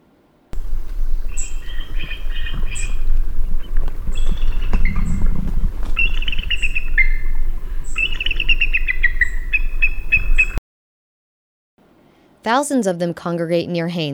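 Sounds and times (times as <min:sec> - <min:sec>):
bald eagle giving high chirping whistles: 0:00.6 - 0:10.6
steady low rumble of wind or engine noise: 0:00.6 - 0:10.6
speech: 0:12.4 - 0:14.1.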